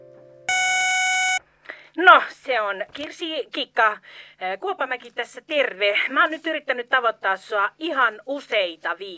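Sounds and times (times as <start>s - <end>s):
cassette answering machine beep: 0.5s - 1.4s
speech: 2.0s - 9.1s.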